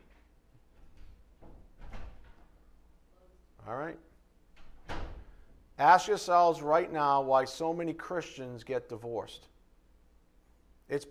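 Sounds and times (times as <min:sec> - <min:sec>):
office door swinging shut with a soft bump and thud: 0:00.8 - 0:02.5, 0:04.6 - 0:05.5
speech: 0:03.7 - 0:04.1, 0:05.8 - 0:09.5, 0:10.9 - 0:11.1.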